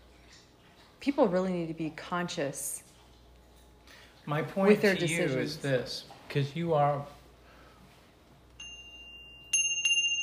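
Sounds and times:
speech: 0:01.0 - 0:02.8, 0:04.3 - 0:07.2
small bell dinging: 0:08.6 - 0:10.2.

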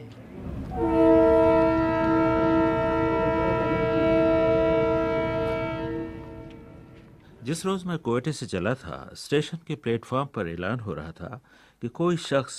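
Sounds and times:
moving train rumbling: 0:00.0 - 0:09.0
train horn blaring: 0:00.4 - 0:07.2
speech: 0:07.5 - 0:12.5.

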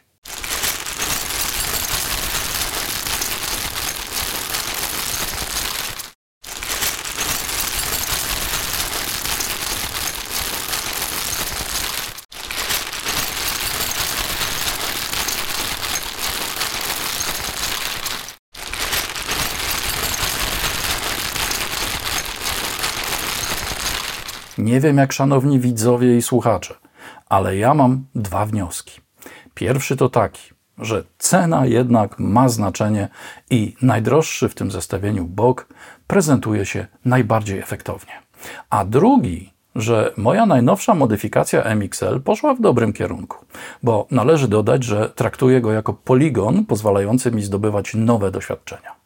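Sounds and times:
plastic bag with tools inside crinkling: 0:00.2 - 0:24.6
speech: 0:24.7 - 0:29.0, 0:29.6 - 0:49.0.

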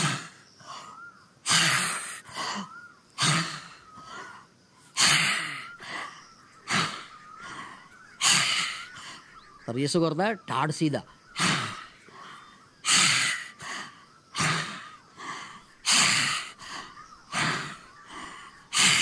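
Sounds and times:
person breathing deliberately in and out during a meditation exercise: 0:00.0 - 0:09.4, 0:11.4 - 0:19.0
speech: 0:09.7 - 0:11.5.

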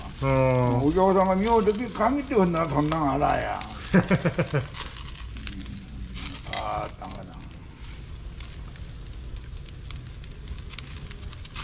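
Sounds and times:
straw fire crackling for straw-flame cooking in a coastal town: 0:00.0 - 0:11.6
speech: 0:00.2 - 0:05.0
laughter: 0:10.4 - 0:11.6.

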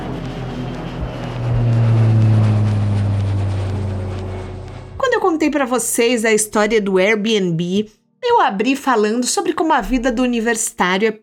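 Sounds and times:
small jet plane taking off: 0:00.0 - 0:05.8
speech: 0:05.5 - 0:11.2.

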